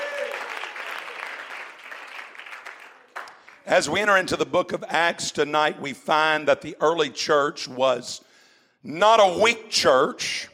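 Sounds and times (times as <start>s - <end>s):
audience applauding: 0.0s - 4.0s
speech: 3.7s - 10.5s.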